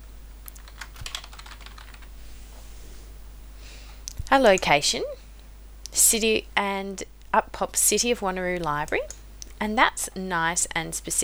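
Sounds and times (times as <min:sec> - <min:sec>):
low steady hum: 0:00.0 - 0:11.2
typing on a computer keyboard: 0:00.4 - 0:02.1
speech: 0:04.3 - 0:05.2, 0:06.0 - 0:11.2.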